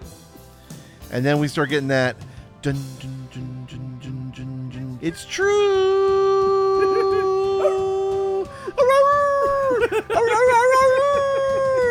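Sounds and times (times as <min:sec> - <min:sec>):
speech: 0:01.1 - 0:03.5, 0:05.0 - 0:06.2
laughter: 0:06.6 - 0:08.1, 0:09.4 - 0:11.8
person howling like a wolf: 0:06.8 - 0:08.4.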